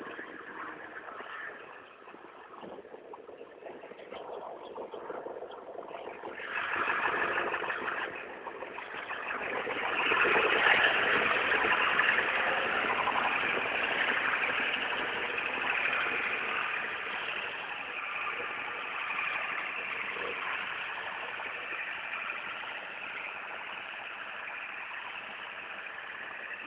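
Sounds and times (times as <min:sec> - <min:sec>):
diesel pickup truck engine passing: 0:00.0 - 0:26.6.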